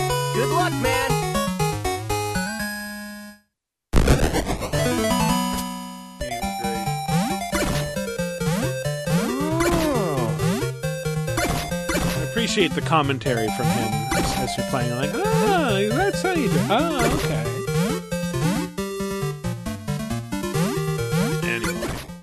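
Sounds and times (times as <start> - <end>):
retro 8-bit Famicom-style video game music: 0.0 - 3.4, 4.7 - 22.2
speech: 0.7 - 1.1, 12.5 - 17.5.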